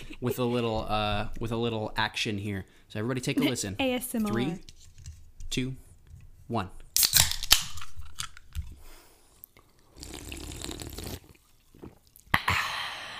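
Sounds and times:
speech: 0.2 - 4.8, 5.5 - 5.8, 6.5 - 6.8
16-ounce Coca-Cola cans popping open: 7.0 - 8.7
people sipping and swallowing Coca-Cola: 9.4 - 12.5
Coca-Cola fizzing: 9.6 - 12.3.

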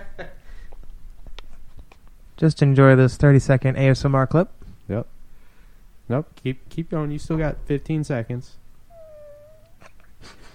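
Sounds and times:
speech: 2.4 - 5.1, 6.1 - 8.6
thin drawn-out cat-like wail: 8.9 - 9.8.

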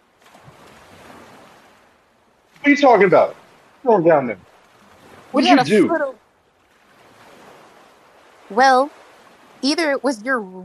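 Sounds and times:
faint windy rumble: 0.0 - 10.6
ocean waves crashing: 0.0 - 10.6
speech: 2.6 - 4.5, 5.3 - 6.2, 8.5 - 9.0, 9.6 - 10.6.

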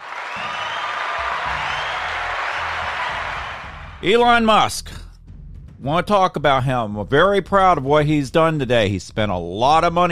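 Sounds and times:
large crowd applauding: 0.0 - 4.0
speech: 4.0 - 5.0, 5.8 - 10.1.

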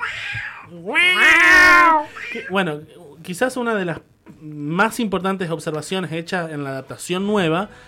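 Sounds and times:
cat meowing: 0.0 - 2.6
speech: 0.7 - 1.2, 2.3 - 7.8.

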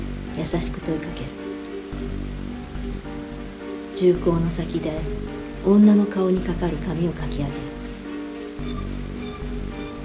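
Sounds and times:
steady rain through a window pattering on a surface: 0.0 - 10.0
speech: 0.4 - 2.4, 4.0 - 7.7.

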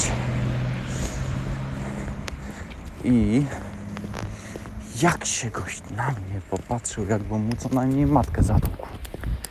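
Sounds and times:
Volkswagen Golf IV 1.9 car engine rumbling: 0.0 - 9.4
wind buffeting the microphone: 0.0 - 9.4
speech: 3.0 - 3.6, 5.0 - 9.0.

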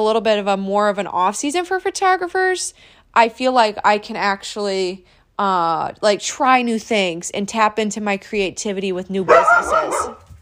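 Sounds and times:
speech: 0.0 - 10.3
dog barking: 9.3 - 10.3.

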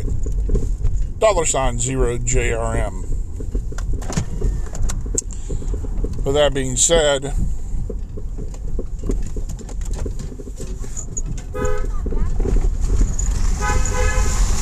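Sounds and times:
loud road and engine noise in a tunnel: 0.0 - 14.5
speech: 1.2 - 3.0, 6.3 - 7.4
car horn honking while driving through a tunnel: 11.5 - 12.0, 13.5 - 14.5.

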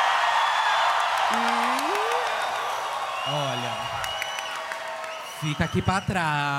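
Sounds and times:
audience shouting and cheering to vote for a contestant: 0.0 - 5.5
single rising whoop from the audience: 1.3 - 2.6
speech: 5.4 - 6.5.

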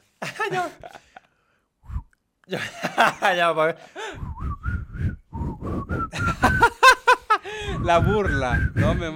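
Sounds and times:
laughter: 0.2 - 1.3, 2.5 - 3.9, 6.1 - 7.5
speech: 0.4 - 1.1, 2.5 - 4.3, 7.5 - 9.1
person whistling imitating a legendary ghost's whistle: 4.2 - 6.8, 7.6 - 9.1.

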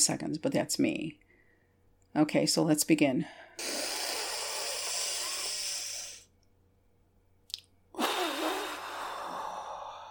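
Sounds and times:
speech: 0.0 - 1.2, 2.1 - 4.0
deep belly breathing in through the nose and out through the mouth: 1.2 - 1.9, 3.2 - 6.3, 8.0 - 10.0.

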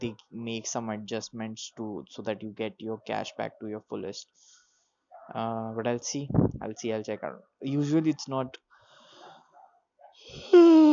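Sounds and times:
speech: 0.0 - 4.6, 5.3 - 8.6
big drawn-out human yawn: 10.2 - 10.9.

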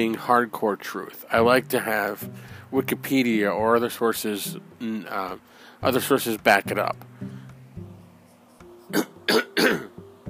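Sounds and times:
speech: 0.0 - 7.4, 8.9 - 9.9
harsh coughing: 8.9 - 10.0.

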